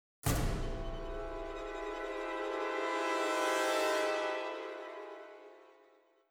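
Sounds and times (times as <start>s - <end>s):
orchestra cluster chord: 0.6s - 6.0s.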